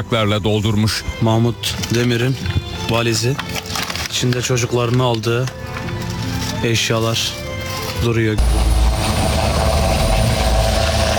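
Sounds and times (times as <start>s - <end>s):
speech: 0.0s - 6.0s, 6.6s - 8.7s
helicopter engine and rotor noise during an air search operation at sea: 8.4s - 11.1s.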